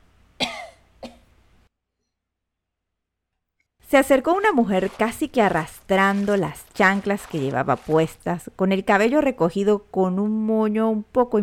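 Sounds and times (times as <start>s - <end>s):
harsh forceful raspy coughs: 0.4s - 1.3s
speech: 3.9s - 11.4s.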